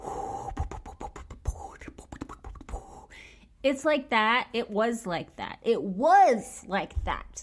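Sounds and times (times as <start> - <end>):
voice imitating wind buffeting a phone microphone: 0.0 - 3.1
speech: 3.6 - 7.4.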